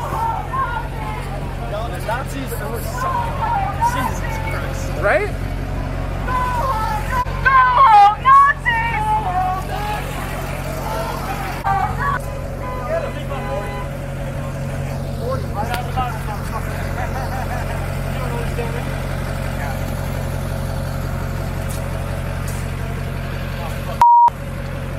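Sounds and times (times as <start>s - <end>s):
harassing crowd murmuring: 0.0s - 24.0s
voices chattering: 0.0s - 24.0s
truck engine idling as it leaves a parking lot: 0.0s - 24.9s
speech: 5.0s - 5.4s
laughter: 15.9s - 18.9s
short sharp beep: 24.0s - 24.3s.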